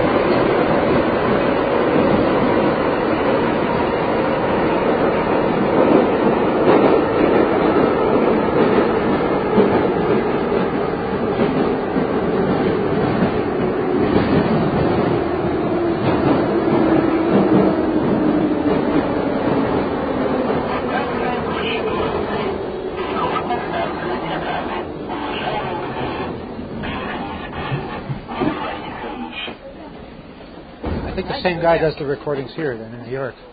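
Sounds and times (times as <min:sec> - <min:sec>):
Moscow metro subway train wheels roaring on rails: 0:00.0 - 0:33.5
subway train wheels squealing: 0:23.0 - 0:29.6
speech: 0:31.4 - 0:33.5.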